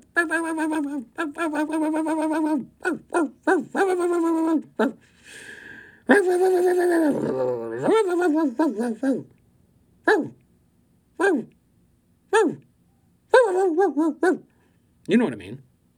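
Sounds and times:
person imitating small dog yapping: 0.0s - 5.0s, 6.1s - 9.3s, 10.1s - 10.4s, 11.2s - 11.5s, 12.3s - 12.6s, 13.3s - 14.5s
speech: 0.2s - 5.5s, 6.1s - 9.4s, 10.1s - 10.4s, 11.2s - 11.6s, 12.3s - 12.7s, 13.5s - 14.5s, 15.1s - 15.7s.

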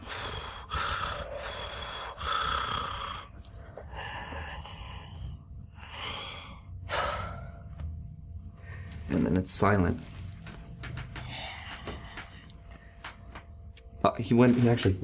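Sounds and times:
video game creature breathing heavily: 0.0s - 7.4s
speech: 9.1s - 10.1s, 14.2s - 15.0s.

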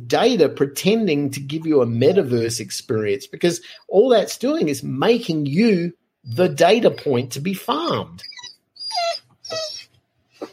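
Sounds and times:
speech: 0.1s - 8.3s
female dog whimpering in Kentucky: 8.2s - 10.5s.

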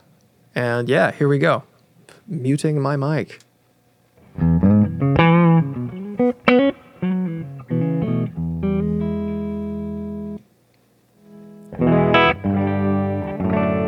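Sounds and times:
speech: 0.6s - 1.7s, 2.3s - 3.4s
electric guitar played through an amp: 4.2s - 10.4s, 11.2s - 13.8s.

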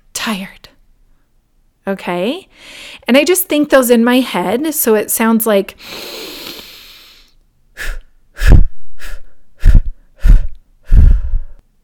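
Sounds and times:
speech: 0.2s - 0.6s, 1.9s - 6.4s
long airy inhale in a calming breathing exercise: 2.6s - 3.0s, 5.8s - 11.6s
short forceful exhales in a calming breathing exercise: 5.8s - 11.6s.

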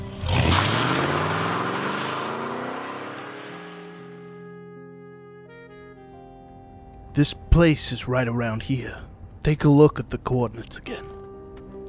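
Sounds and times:
car engine starting and revving: 0.0s - 4.4s
speech: 7.2s - 11.1s.

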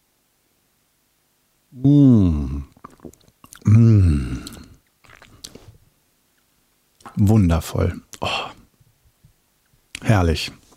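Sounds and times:
speech: 1.7s - 2.0s, 7.3s - 8.4s, 10.1s - 10.6s
small squishy mouth clicks: 2.4s - 5.6s
person slurping tea: 2.6s - 5.8s.

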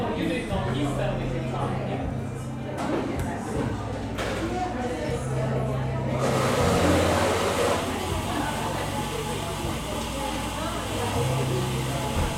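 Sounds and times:
murmur of overlapping voices in a busy coffee shop: 0.0s - 12.3s
espresso machine whirring and hissing: 6.2s - 12.3s.

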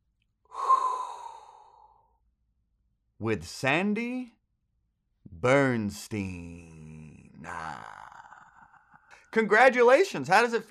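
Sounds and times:
person inhaling a deep breath: 0.5s - 2.1s
speech: 3.2s - 4.4s, 5.4s - 6.8s, 7.4s - 8.0s, 9.3s - 10.7s.

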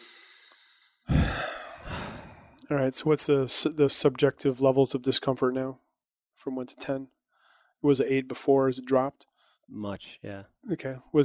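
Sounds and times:
person taking a deep breath during a tapping-style calming exercise: 0.0s - 2.6s, 7.4s - 7.7s
speech: 2.7s - 7.2s, 7.8s - 11.2s.

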